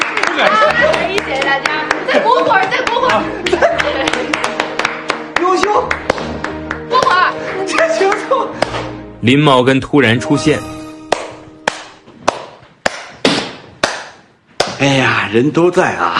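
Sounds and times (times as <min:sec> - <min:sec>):
small group clapping: 0:00.0 - 0:09.0, 0:11.1 - 0:14.9
speech: 0:00.4 - 0:00.6, 0:01.6 - 0:04.2, 0:09.2 - 0:10.7, 0:14.8 - 0:16.1.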